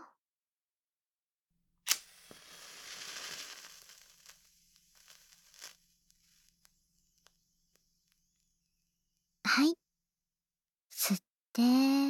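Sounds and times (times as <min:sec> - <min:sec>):
red berry-scented match being struck: 0:01.9 - 0:08.4
speech: 0:11.6 - 0:12.0.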